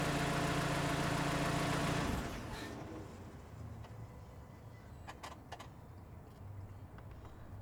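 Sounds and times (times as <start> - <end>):
car engine turning off near: 0.0 - 3.2.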